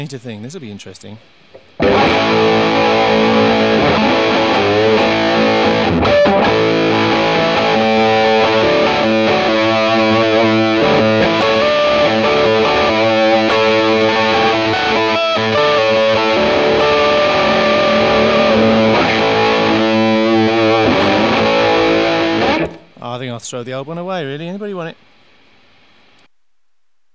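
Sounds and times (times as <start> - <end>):
speech: 0.0 - 2.8, 23.6 - 25.0
Burns electric guitar playing through heavy distortion: 1.6 - 23.0.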